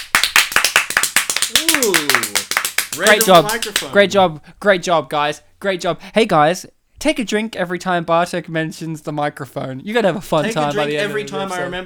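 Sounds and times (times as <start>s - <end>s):
small group clapping: 0.0s - 4.0s
speech: 1.6s - 2.4s, 3.0s - 11.8s.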